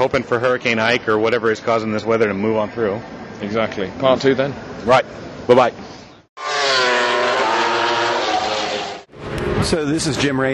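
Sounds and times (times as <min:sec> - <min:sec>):
speech: 0:00.0 - 0:05.9, 0:09.6 - 0:10.5
MotoGP racing motorcycles roaring past during a qualifying session: 0:06.4 - 0:09.6.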